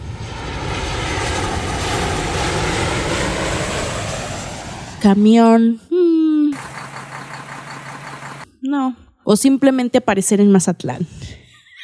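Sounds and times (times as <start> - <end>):
loud airplane engine drone: 0.0 - 8.6
speech: 5.0 - 5.9, 8.6 - 11.4
laughter: 11.5 - 11.8.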